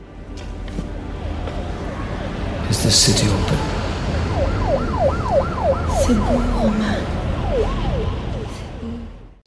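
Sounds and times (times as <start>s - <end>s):
low engine-like drone: 0.0s - 9.4s
processed rumbling city street backdrop: 0.0s - 9.4s
speech: 2.7s - 3.8s, 4.4s - 8.0s
processed wailing siren: 3.4s - 9.3s.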